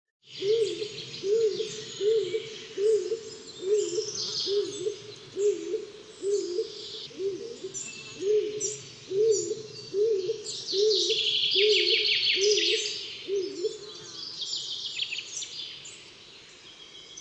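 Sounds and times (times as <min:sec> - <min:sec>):
light songbird chirps: 0:00.2 - 0:17.2
stock dove calling with deep regular coos: 0:00.3 - 0:14.0.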